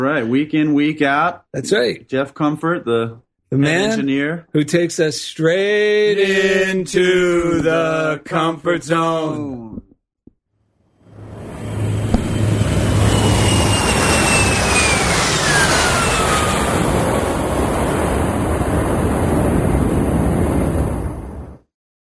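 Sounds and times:
speech: 0.0s - 9.8s
jet airplane engine roaring with high whine: 11.1s - 21.6s.

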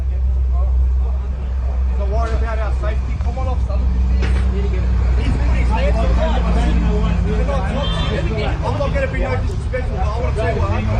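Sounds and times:
large vehicle engine rumbling loudly: 0.0s - 10.9s
people talking: 0.0s - 10.9s.

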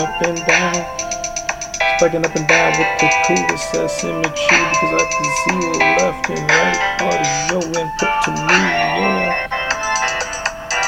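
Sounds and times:
speech: 0.0s - 1.0s, 2.0s - 9.6s
bright electronic music beat playing from a phone: 0.0s - 10.8s.

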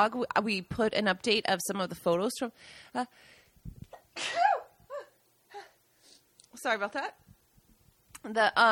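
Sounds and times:
speech: 0.0s - 4.5s, 6.6s - 7.2s, 8.2s - 8.6s
sharp inhales: 2.6s - 3.6s, 5.9s - 6.3s
person sneezing: 3.9s - 5.1s.

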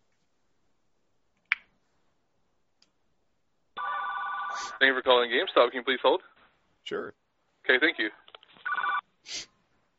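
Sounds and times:
telephone ringing on an outgoing call: 3.8s - 4.8s, 8.6s - 9.1s
speech: 4.6s - 8.2s, 9.2s - 9.5s.

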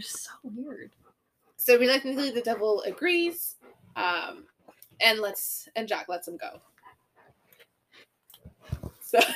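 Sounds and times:
speech: 0.0s - 1.0s, 1.6s - 6.7s, 9.1s - 9.3s
large 95-pound dog breathing heavily into microphone: 0.9s - 4.8s, 6.6s - 8.9s.

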